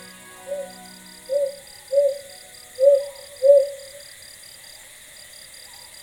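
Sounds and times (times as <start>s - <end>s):
faint thin high-pitched buzz: 0.0s - 4.5s
Ryukyu brown hawk-owl hooting at night in the countryside near Nago City: 0.4s - 4.1s.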